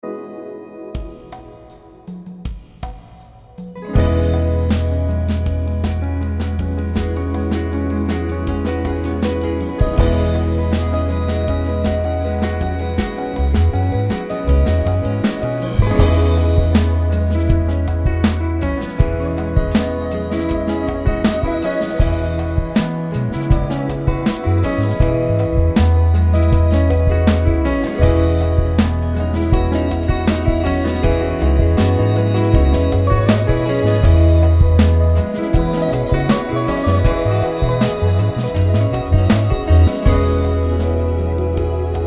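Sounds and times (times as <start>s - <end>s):
acoustic piano: 0.0s - 42.0s.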